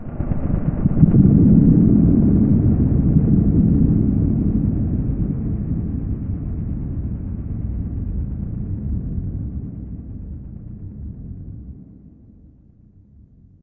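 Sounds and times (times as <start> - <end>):
ambient city cloud hit: 0.0 - 13.5.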